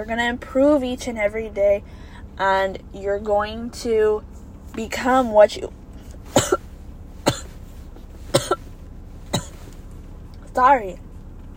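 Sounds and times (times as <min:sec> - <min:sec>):
speech: 0:00.0 - 0:05.8, 0:10.6 - 0:11.0
person coughing: 0:06.3 - 0:06.7, 0:07.3 - 0:07.5, 0:08.3 - 0:08.7, 0:09.4 - 0:09.6
person clearing throat: 0:06.4 - 0:06.6, 0:07.3 - 0:07.5, 0:09.4 - 0:09.6.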